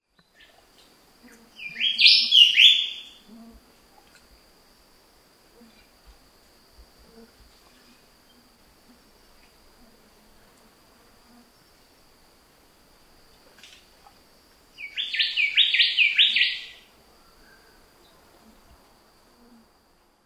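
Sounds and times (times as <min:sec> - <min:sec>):
New Caledonian whistler: 0:01.6 - 0:03.2, 0:14.8 - 0:16.8.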